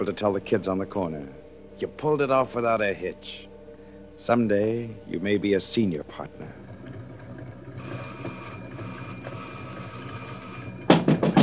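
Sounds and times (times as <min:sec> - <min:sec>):
speech: 0:00.0 - 0:03.5, 0:04.2 - 0:06.6
doorbell buzzing: 0:07.8 - 0:11.4.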